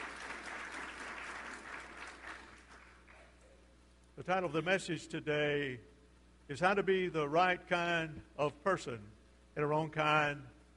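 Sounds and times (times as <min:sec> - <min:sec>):
applause from a large gathering: 0:00.0 - 0:03.2
speech: 0:04.2 - 0:05.9, 0:06.5 - 0:10.7.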